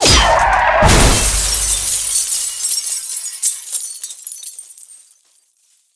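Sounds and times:
crash shot: 0.0 - 2.1.

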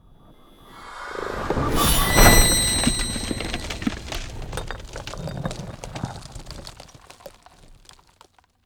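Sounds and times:
ice spell whoosh, cold frozen pierce: 0.0 - 4.4.

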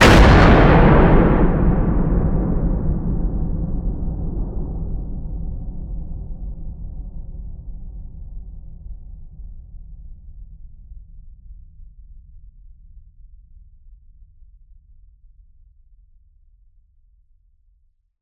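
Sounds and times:
distorted cinematic hit: 0.0 - 5.2.

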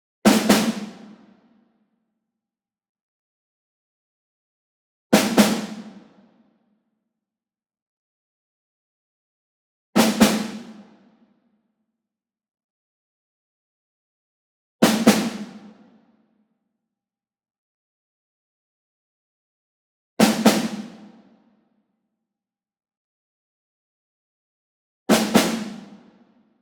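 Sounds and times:
ensemble snare drum group medium double: 0.2 - 1.4, 5.1 - 6.3, 10.0 - 11.1, 14.8 - 16.0, 20.2 - 21.3, 25.1 - 26.1.

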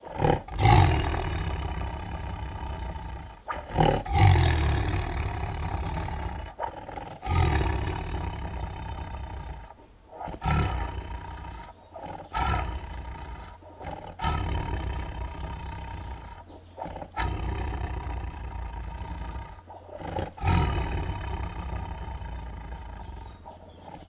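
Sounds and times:
tigers growling angrily: 0.0 - 24.0.

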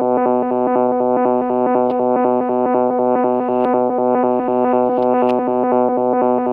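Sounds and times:
electronic tones in stereo: 0.2 - 6.3.

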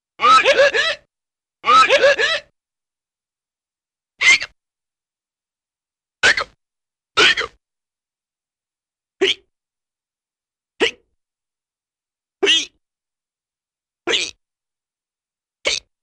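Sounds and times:
funny cartoon hiccups: 0.2 - 1.0, 1.6 - 2.5, 6.2 - 6.6, 7.2 - 7.6, 9.2 - 9.5, 12.4 - 12.8, 14.1 - 14.4, 15.6 - 15.9.

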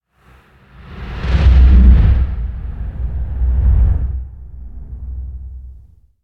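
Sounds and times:
sub bass whoosh: 0.7 - 6.1
deep shaking rumble: 0.8 - 6.1.

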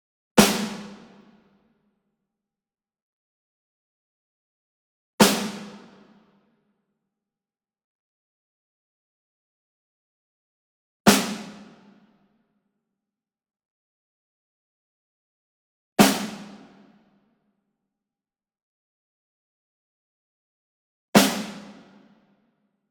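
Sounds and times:
single high-tension snare drum hit, medium: 0.4 - 1.2, 5.2 - 5.9, 11.1 - 11.6, 16.0 - 16.6, 21.2 - 21.8.

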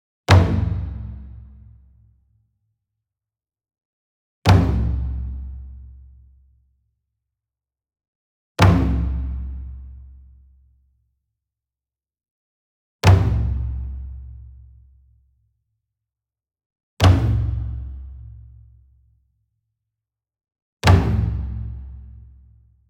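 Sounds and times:
single 28 inch taiko drum flam with hard beater: 0.3 - 1.2, 4.5 - 5.9, 13.1 - 14.4, 17.0 - 18.4, 20.8 - 22.0.

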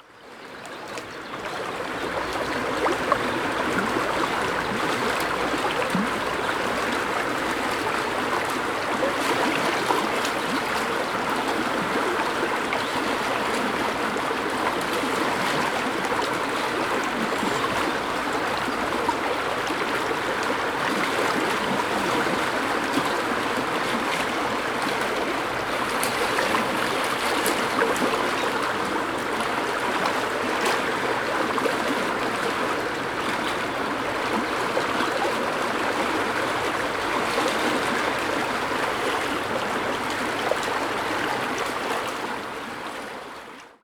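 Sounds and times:
river bubbling: 0.1 - 43.6.

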